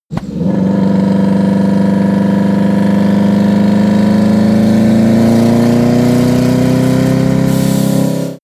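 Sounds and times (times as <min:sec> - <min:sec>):
VW T1 accelerating slowly in gear: 0:00.1 - 0:08.4.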